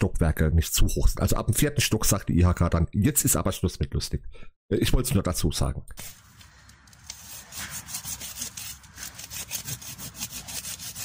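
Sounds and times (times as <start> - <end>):
speech: 0.0 - 6.2
worn saw with frayed blade cutting through wood and into the ground: 6.2 - 11.0.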